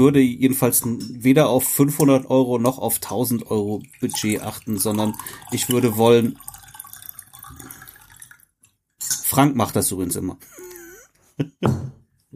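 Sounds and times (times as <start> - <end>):
speech: 0.0 - 6.5, 9.3 - 10.6, 11.4 - 12.3
lemon water pouring: 1.8 - 9.9.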